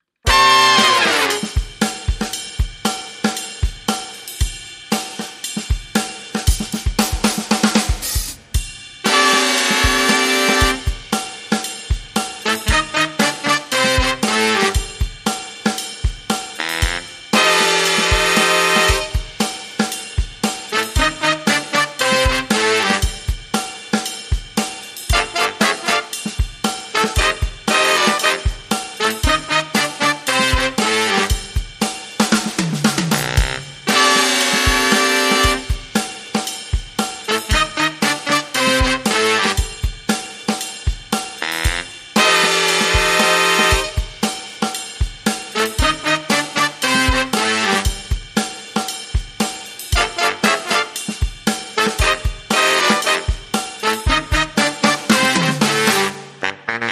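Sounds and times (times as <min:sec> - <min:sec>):
drums: 0:00.0 - 0:56.8
horns: 0:00.2 - 0:02.6, 0:09.0 - 0:15.4, 0:16.3 - 0:23.9, 0:24.9 - 0:36.2, 0:37.0 - 0:40.1, 0:41.2 - 0:44.6, 0:45.3 - 0:48.3, 0:49.8 - 0:56.8.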